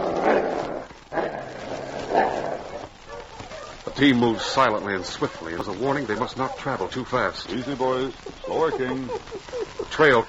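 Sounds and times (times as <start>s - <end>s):
dog growling: 0.0s - 8.1s
laughter: 3.7s - 10.2s
speech: 4.0s - 10.2s.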